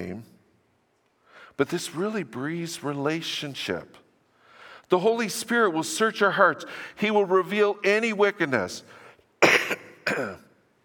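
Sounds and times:
speech: 0.0s - 0.4s, 1.6s - 4.0s, 4.9s - 10.4s
coughing into a hand: 9.4s - 10.6s.

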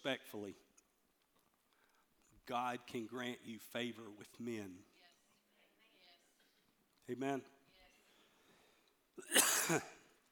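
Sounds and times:
speech: 0.0s - 0.7s, 2.4s - 4.9s, 7.1s - 7.6s, 9.2s - 10.0s
single harsh rough throaty cough: 9.2s - 10.1s.

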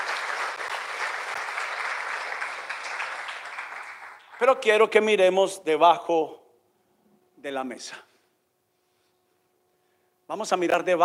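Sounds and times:
crowd applauding: 0.0s - 4.8s
speech: 4.4s - 6.4s, 7.4s - 8.1s, 10.3s - 11.0s.

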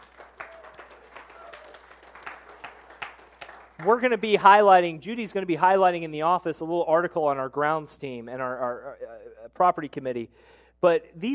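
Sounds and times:
audience applauding: 0.0s - 4.3s
speech: 3.8s - 11.3s.

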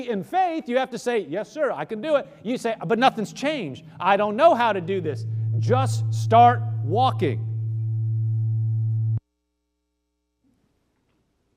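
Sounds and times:
speech: 0.0s - 7.5s
electrical hum: 2.1s - 9.2s.

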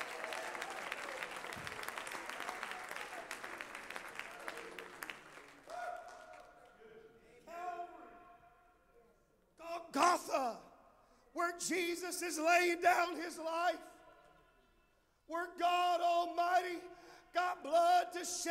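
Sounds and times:
audience clapping in lively applause: 0.0s - 6.7s
speech: 10.0s - 10.7s, 11.4s - 13.8s, 15.3s - 16.9s, 17.6s - 18.4s.

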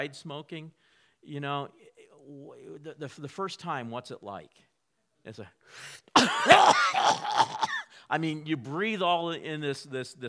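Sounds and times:
speech: 0.0s - 10.2s
person imitating coughing and choking: 5.8s - 7.9s.

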